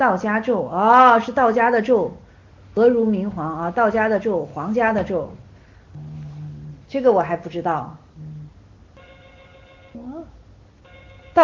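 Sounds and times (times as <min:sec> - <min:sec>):
speech: 0:00.0 - 0:02.2, 0:02.8 - 0:05.4, 0:06.9 - 0:08.0
low hum: 0:00.0 - 0:11.4
telephone ringing at home: 0:09.0 - 0:10.0, 0:10.8 - 0:11.4.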